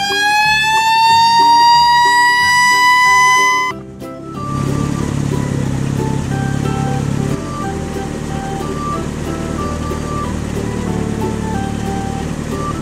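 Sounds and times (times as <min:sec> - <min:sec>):
red fire truck siren wailing: 0:00.0 - 0:12.8
short tonal beeps: 0:00.7 - 0:03.8.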